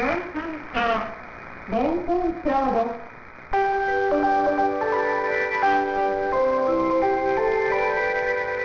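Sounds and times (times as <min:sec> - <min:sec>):
faint hiss: 0:00.0 - 0:08.6
speech: 0:00.2 - 0:03.7
train station departure melody playing a folk tune in chime-like electronic tones: 0:03.6 - 0:08.6.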